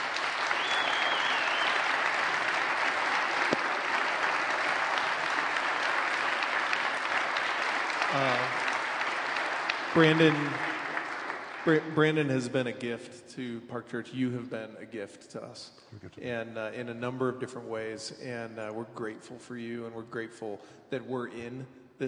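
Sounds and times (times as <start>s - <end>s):
large crowd applauding at a church event: 0.0s - 12.5s
speech: 10.0s - 10.7s, 11.6s - 22.0s.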